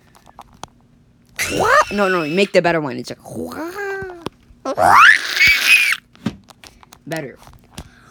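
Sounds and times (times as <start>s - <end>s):
person imitating a monster's shriek: 1.4s - 2.6s, 3.3s - 6.0s
speech: 1.5s - 3.8s, 4.8s - 5.2s, 7.1s - 7.6s.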